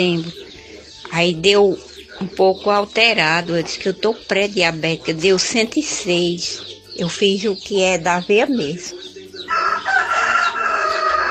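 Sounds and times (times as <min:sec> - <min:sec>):
speech: 0:00.0 - 0:00.4, 0:01.1 - 0:09.1
rooster crowing: 0:09.4 - 0:11.2.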